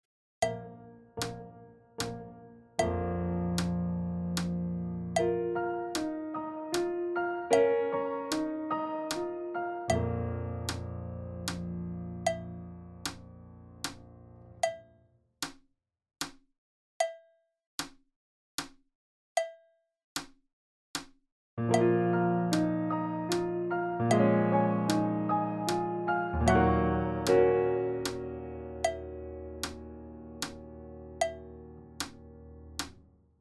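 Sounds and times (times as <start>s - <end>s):
fast piano playing: 0.4s - 14.6s, 21.6s - 33.1s.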